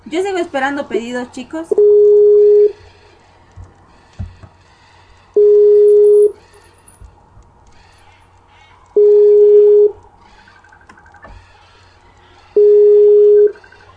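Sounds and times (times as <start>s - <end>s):
speech: 0.1s - 2.1s
telephone line tones while a number is being called: 1.7s - 2.8s, 5.4s - 6.6s, 9.0s - 11.4s, 12.5s - 13.9s.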